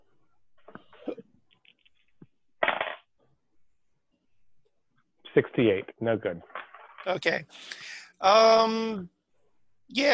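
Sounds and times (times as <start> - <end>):
dice clattering across a hard surface: 2.6 - 3.0
speech: 5.4 - 9.2, 9.9 - 10.1.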